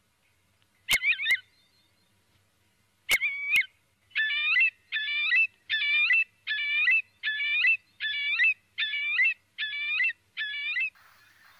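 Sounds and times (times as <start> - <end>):
Eurasian curlew quavering calls with sharp clicks: 3.1 - 11.5
Eurasian curlew buzzy warbling calls: 11.0 - 11.5.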